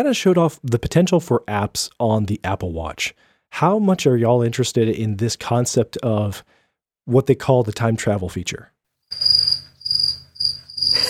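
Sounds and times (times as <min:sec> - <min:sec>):
speech: 0:00.0 - 0:09.4
crickets chirping: 0:09.1 - 0:11.0.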